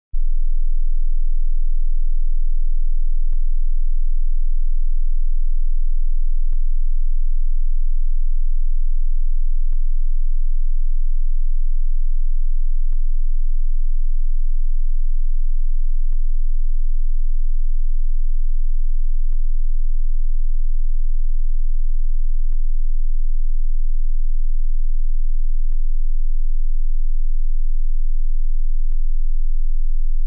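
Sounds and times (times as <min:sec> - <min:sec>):
20 Hz sine wave tone: 0:00.2 - 0:30.2.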